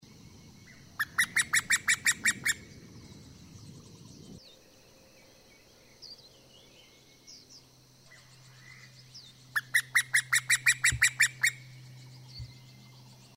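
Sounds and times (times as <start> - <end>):
Oriental cuckoo calling, summer visitor: 0.7 - 2.8, 9.5 - 12.7.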